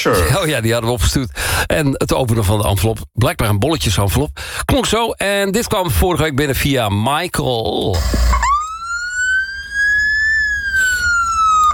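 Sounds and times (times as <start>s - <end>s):
speech: 0.0s - 8.5s
Norwegian ambulance siren wailing: 8.0s - 11.7s.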